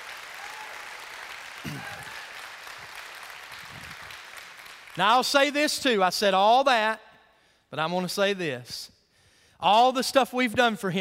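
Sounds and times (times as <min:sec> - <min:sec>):
congregation applauding: 0:00.0 - 0:05.6
speech: 0:01.6 - 0:02.1, 0:05.0 - 0:07.0, 0:07.7 - 0:09.0, 0:09.6 - 0:10.9.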